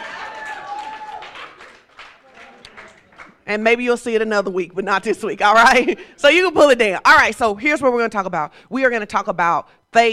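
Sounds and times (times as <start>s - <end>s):
audience applause: 0.0s - 3.4s
cheering: 0.0s - 3.4s
speech: 3.5s - 10.1s.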